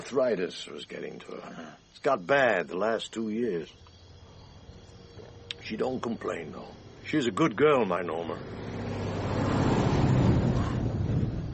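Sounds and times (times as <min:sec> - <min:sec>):
speech: 0:00.1 - 0:03.9, 0:05.6 - 0:08.8
big truck passing on the road: 0:04.3 - 0:11.5
deep broad truck engine and tire rumble: 0:06.3 - 0:11.5.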